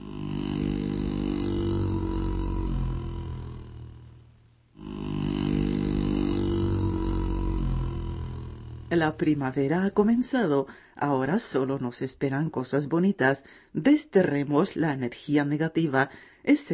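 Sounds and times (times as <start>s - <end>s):
bears just awake from winter sleep growling and grunting: 0.0s - 4.2s, 4.8s - 9.4s
speech: 8.9s - 16.7s.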